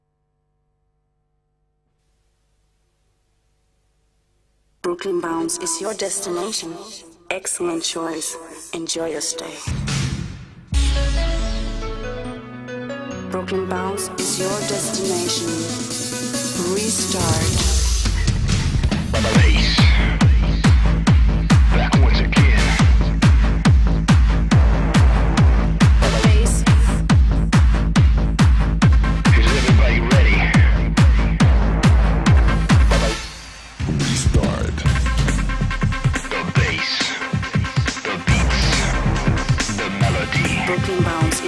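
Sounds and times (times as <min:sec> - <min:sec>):
bass beats: 0:09.7 - 0:12.4, 0:14.4 - 0:41.4
melody: 0:10.8 - 0:17.2.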